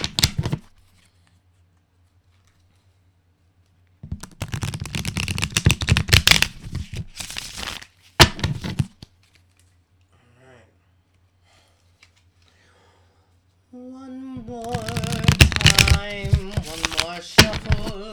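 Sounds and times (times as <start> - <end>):
deck of tarot cards being shuffled: 0.0 - 1.3, 4.0 - 9.8, 14.4 - 18.1.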